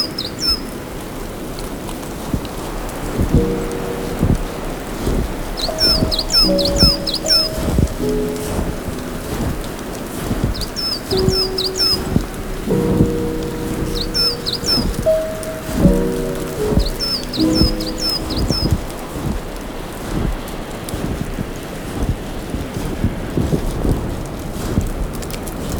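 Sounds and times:
bird chirps: 0:00.0 - 0:00.8, 0:03.3 - 0:19.1
flowing water rushing: 0:00.0 - 0:25.7
clumps of snow falling from tree branches: 0:02.2 - 0:25.7.

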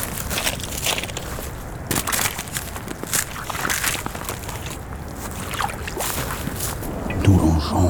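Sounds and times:
gentle stream flowing: 0:00.1 - 0:07.7.

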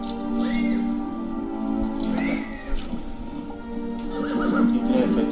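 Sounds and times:
agitated horse whinnying and neighing: 0:00.2 - 0:01.0, 0:02.0 - 0:02.9, 0:04.0 - 0:05.2.

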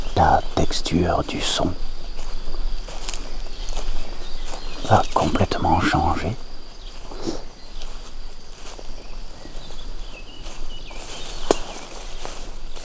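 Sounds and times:
low constant outdoor hush: 0:00.0 - 0:07.9
speech: 0:00.2 - 0:01.9, 0:04.8 - 0:06.5
footsteps walking across an open pasture field: 0:00.2 - 0:12.8.

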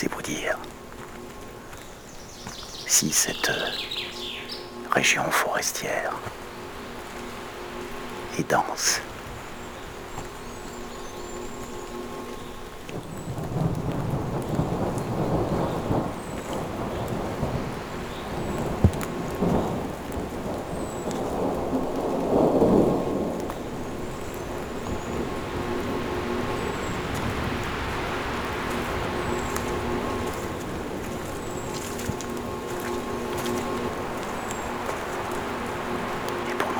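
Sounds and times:
speech: 0:00.0 - 0:00.6, 0:02.9 - 0:03.9, 0:05.0 - 0:06.4, 0:08.4 - 0:09.1
steady rain over a dense forested region: 0:00.0 - 0:36.7
deep thunder rumble over a dense forested region: 0:13.0 - 0:36.7.

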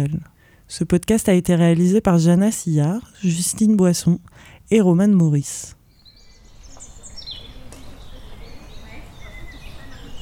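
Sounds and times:
speech: 0:00.0 - 0:05.8
bird chirps and song phrases in the Saint-Martin meadows in Rennes France: 0:05.8 - 0:10.2.

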